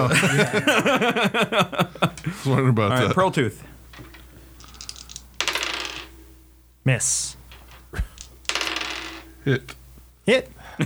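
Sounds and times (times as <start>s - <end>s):
speech: 0.0s - 4.1s, 6.8s - 8.1s, 9.5s - 10.8s
dice rattling and clattering across a hard tabletop: 3.8s - 6.4s, 7.1s - 10.6s.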